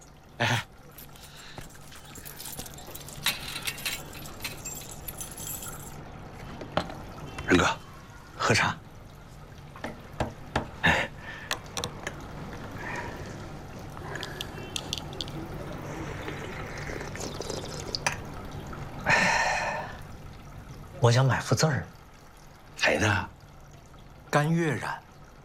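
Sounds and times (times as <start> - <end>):
tea pouring into cups: 0.0 - 9.6, 10.9 - 25.4
cups and teaware clinking: 1.0 - 6.0, 14.1 - 18.3.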